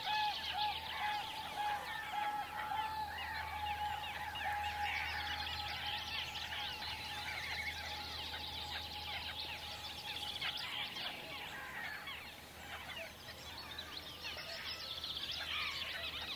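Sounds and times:
overlapping bird calls and chatter at natural sites in Finland: 0.0s - 16.3s.

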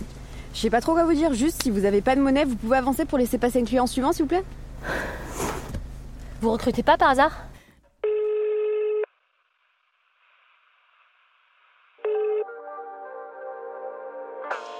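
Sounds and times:
speech: 0.6s - 5.2s, 6.4s - 7.5s
telephone ringing on an incoming call: 8.0s - 9.1s, 12.0s - 12.5s.

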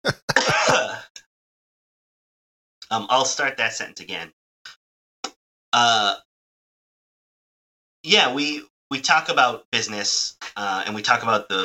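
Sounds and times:
person coughing: 0.0s - 1.1s
raspy throat clearing: 0.0s - 1.1s
speech: 2.9s - 4.4s, 5.7s - 6.3s, 8.0s - 11.6s.

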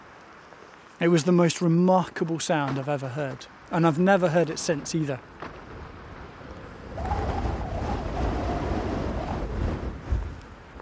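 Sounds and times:
speech: 1.0s - 5.4s
wind buffeting a microphone outdoors beside a loch in an easterly gale: 5.5s - 10.7s.

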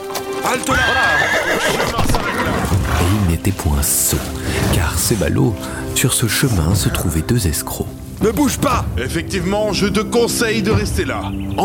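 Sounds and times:
horse hooves clip-clopping: 0.0s - 3.2s
speech: 0.4s - 11.6s
plump horse whinnying at the edge of a clearing: 0.6s - 3.2s.

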